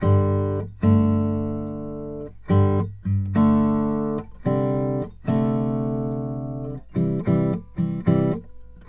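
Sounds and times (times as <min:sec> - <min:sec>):
country guitar intro: 0:00.0 - 0:08.8.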